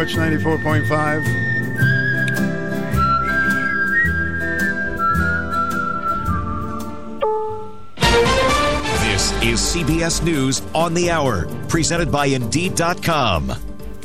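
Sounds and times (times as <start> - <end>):
speech: 0.0 - 1.9, 9.4 - 13.7
bright whistled melody: 0.0 - 9.2
steady instrumental backing: 0.0 - 14.0.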